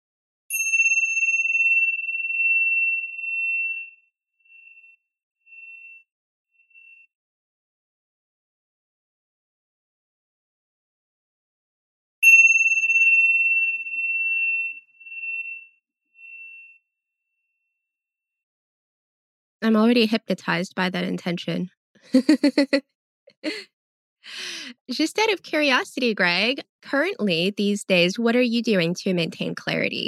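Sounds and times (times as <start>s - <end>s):
meditation chime ringing: 0.5s - 7.1s, 12.2s - 17.8s
speech: 19.6s - 30.0s
laughter: 22.1s - 22.8s, 23.4s - 23.6s.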